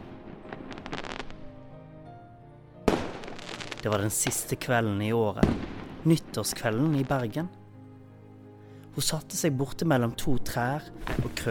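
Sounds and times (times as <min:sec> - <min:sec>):
fireworks exploding: 0:00.0 - 0:01.4, 0:02.8 - 0:04.6, 0:05.4 - 0:06.4
speech: 0:03.8 - 0:07.6, 0:09.0 - 0:11.4.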